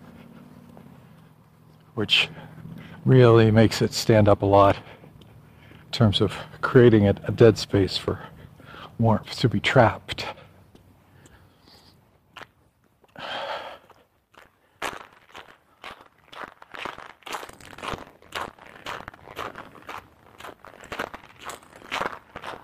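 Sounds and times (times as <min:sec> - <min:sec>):
speech: 0:02.0 - 0:05.0, 0:06.0 - 0:08.3, 0:09.0 - 0:10.4
footsteps crunching through fresh snow over a little ice: 0:14.3 - 0:22.6.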